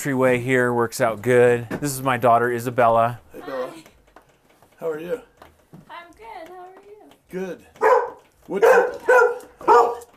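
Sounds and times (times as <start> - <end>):
speech: 0.0 - 3.2, 4.8 - 5.3, 7.3 - 7.8, 8.5 - 9.3
dog barking: 7.8 - 10.1.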